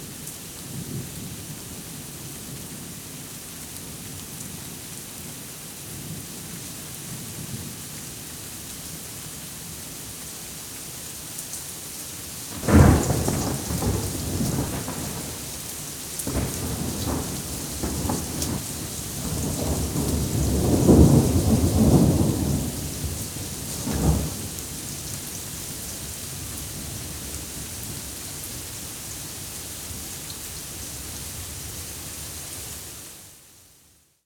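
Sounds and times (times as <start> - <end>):
rain: 0.0 - 34.2
thunder: 12.5 - 25.2.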